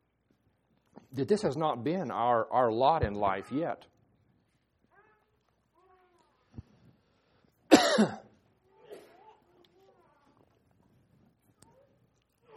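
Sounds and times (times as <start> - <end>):
speech: 1.1 - 3.9
person coughing harshly: 7.7 - 9.4
throat clearing: 7.7 - 9.4.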